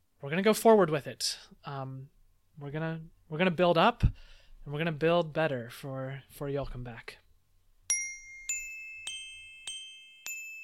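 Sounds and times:
speech: 0:00.2 - 0:07.2
bright chime dings signalling time, weather and community announcements: 0:07.9 - 0:10.6.

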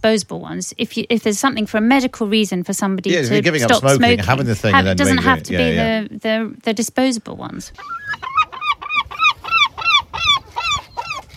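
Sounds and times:
speech: 0:00.0 - 0:08.3
laughter: 0:03.1 - 0:05.9
seagull calling: 0:07.8 - 0:11.3.

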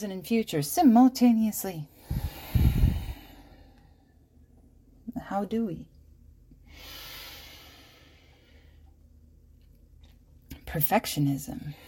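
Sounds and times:
speech: 0:00.0 - 0:02.2, 0:05.2 - 0:05.9, 0:10.7 - 0:11.8
person inhaling deeply during a breathing exercise: 0:02.0 - 0:04.0, 0:06.7 - 0:08.8.

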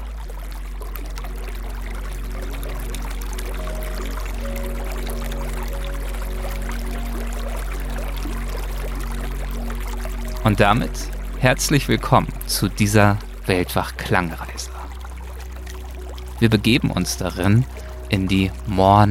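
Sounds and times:
small mountain stream gurgling and splashing: 0:00.0 - 0:19.1
speech: 0:10.5 - 0:14.5, 0:16.4 - 0:19.1.

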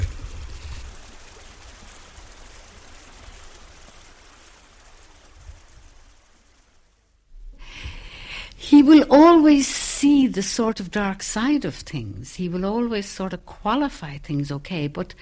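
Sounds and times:
river water flowing: 0:00.0 - 0:07.2
speech: 0:08.8 - 0:15.2.

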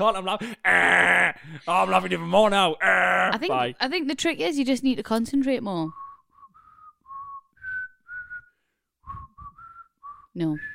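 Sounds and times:
speech: 0:00.0 - 0:06.0, 0:10.4 - 0:10.7
person whistling a short wavering tune: 0:06.0 - 0:10.7.

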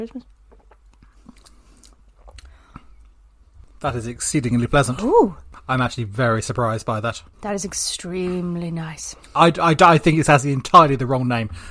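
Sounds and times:
speech: 0:00.0 - 0:00.4, 0:03.8 - 0:11.6
low hum: 0:00.0 - 0:11.6
person sipping a drink after a toast: 0:00.5 - 0:03.0.

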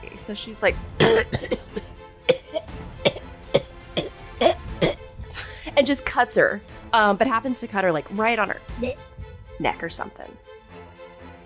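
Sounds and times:
speech: 0:00.0 - 0:02.0, 0:05.9 - 0:10.5
voice imitating a bad coughing fit: 0:01.0 - 0:05.6, 0:08.8 - 0:09.0.

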